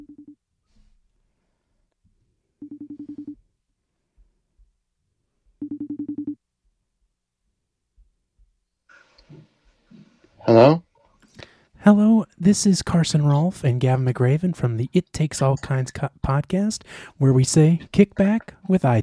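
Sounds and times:
phone line ringing on an outgoing call: 0:02.6 - 0:03.4
speech: 0:11.9 - 0:19.0.

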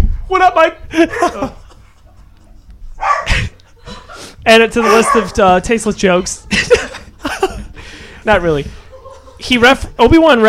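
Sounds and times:
speech: 0:00.3 - 0:01.6, 0:04.4 - 0:06.8, 0:08.2 - 0:08.8, 0:09.4 - 0:10.4
laughter: 0:00.9 - 0:05.4, 0:06.0 - 0:09.9
dogs barking and yipping: 0:03.0 - 0:03.5, 0:04.8 - 0:05.6.

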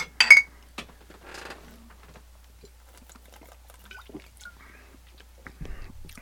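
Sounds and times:
glasses of cider clinking in a toast: 0:00.0 - 0:00.5
quiet glass handling sounds: 0:00.0 - 0:00.5
faint sips: 0:02.4 - 0:06.2.

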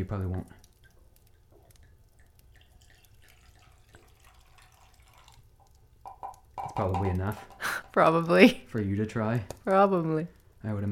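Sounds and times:
speech: 0:00.0 - 0:00.6, 0:06.6 - 0:10.9
drink pouring into a glass: 0:00.8 - 0:07.6.

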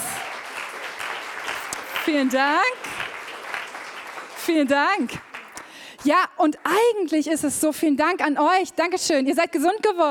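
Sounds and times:
audience applause: 0:00.0 - 0:05.9
speech: 0:02.0 - 0:03.0, 0:04.5 - 0:05.3, 0:06.0 - 0:10.0.

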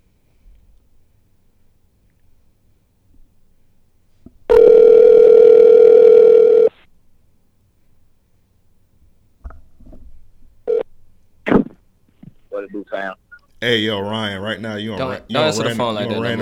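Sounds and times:
phone ringback tone: 0:04.5 - 0:06.7
speech: 0:13.0 - 0:16.4.

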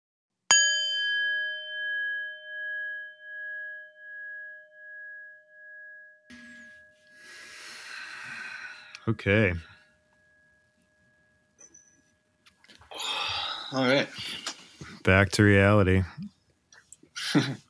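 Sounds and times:
meditation bell ringing: 0:00.5 - 0:07.7, 0:08.3 - 0:12.5
soft breathy hiss: 0:07.1 - 0:09.2
speech: 0:09.1 - 0:09.7, 0:13.7 - 0:14.5, 0:15.1 - 0:16.3, 0:17.3 - 0:17.6.

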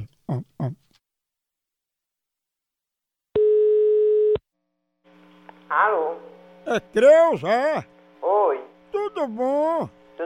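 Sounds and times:
speech: 0:00.3 - 0:00.8, 0:05.7 - 0:10.2
telephone dial tone as a call is placed: 0:03.4 - 0:04.4.

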